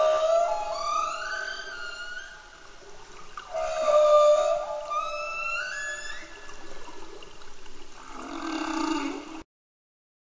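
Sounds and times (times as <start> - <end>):
humpback whale song in Antarctica: 0.0 - 9.4.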